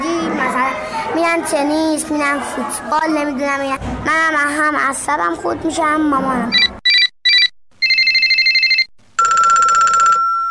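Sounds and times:
speech: 0.7s - 6.7s
mobile phone ringtone with electronic beeps, trill and chime: 6.6s - 10.4s.

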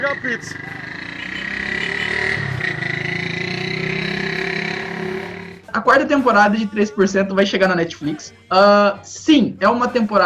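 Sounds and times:
speech: 0.0s - 0.8s, 5.8s - 10.2s
motorcycle engine passing by outside: 0.0s - 5.7s.

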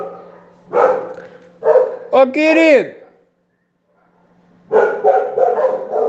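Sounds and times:
dogs barking loudly: 0.0s - 2.2s, 3.9s - 6.0s
speech: 2.2s - 3.0s.

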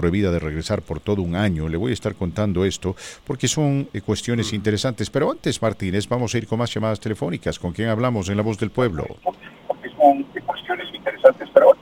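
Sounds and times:
speech: 0.0s - 9.5s
caller's radio broadcast voice bleeding back over a phone line: 4.3s - 4.8s, 9.1s - 11.8s.

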